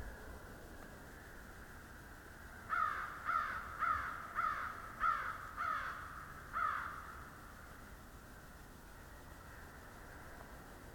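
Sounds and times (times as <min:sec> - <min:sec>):
background hiss: 0:00.0 - 0:10.9
flock of crows cawing: 0:02.7 - 0:07.4.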